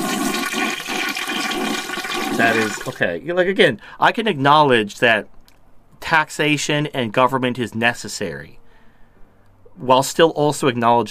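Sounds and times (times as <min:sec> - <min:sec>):
toilet flushing: 0:00.0 - 0:03.0
speech: 0:02.4 - 0:05.4, 0:06.1 - 0:08.6, 0:09.8 - 0:11.1.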